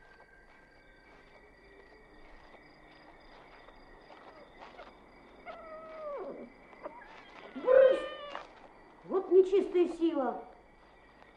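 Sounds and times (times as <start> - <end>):
cat meowing: 7.5 - 8.4
speech: 9.5 - 10.5.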